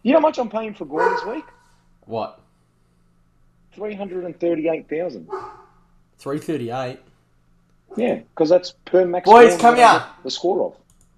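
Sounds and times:
speech: 0.0s - 2.4s, 3.7s - 5.6s, 6.2s - 7.1s, 7.9s - 11.1s
softer trailing whine-like dog bark: 0.9s - 1.5s
several dogs barking with sharp yaps: 0.9s - 1.6s, 5.3s - 5.7s.

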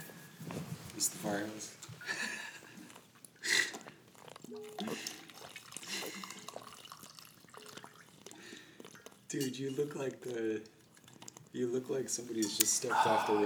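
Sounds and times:
speech: 1.0s - 2.3s, 9.4s - 10.8s, 11.6s - 13.4s
water pouring from a glass gallon jug into a cup: 4.4s - 13.4s.

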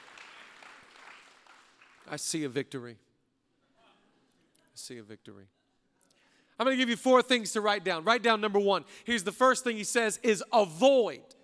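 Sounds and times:
large audience clapping at a sermon: 0.0s - 2.4s
speech: 2.1s - 3.1s, 4.8s - 5.6s, 6.6s - 11.4s.

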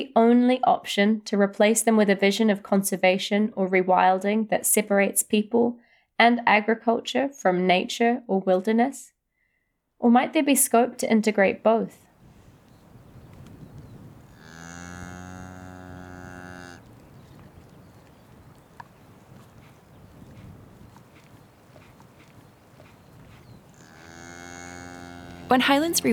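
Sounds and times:
speech: 0.0s - 9.1s, 10.0s - 12.0s, 25.5s - 26.1s
quiet outdoor ambience: 11.6s - 26.1s
faint scattered clicks: 12.6s - 13.9s, 16.8s - 19.5s
cow mooing: 14.1s - 17.0s, 23.5s - 26.1s.

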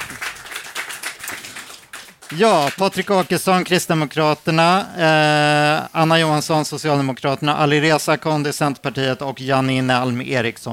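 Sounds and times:
audience applause: 0.0s - 3.5s
speech: 2.3s - 10.7s.

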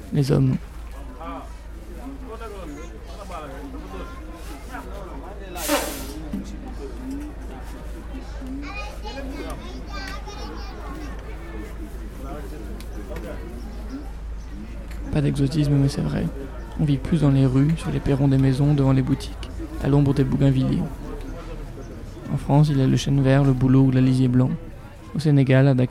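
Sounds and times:
speech: 0.1s - 0.7s, 12.3s - 21.0s, 22.3s - 25.8s
children's voices chattering and calling on a busy street in Dakar Senegal: 0.7s - 25.5s
loud hiss: 5.6s - 6.2s.

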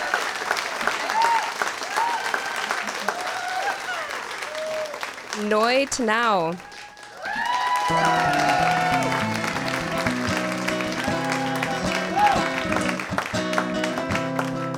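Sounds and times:
large crowd cheering with whoops: 0.0s - 14.7s
speech: 5.4s - 6.7s, 7.9s - 8.7s.

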